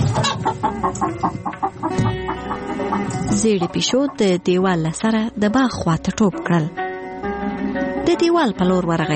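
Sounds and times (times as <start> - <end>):
hen clucking: 0.0 - 4.9
speech: 3.4 - 6.8, 8.1 - 9.1.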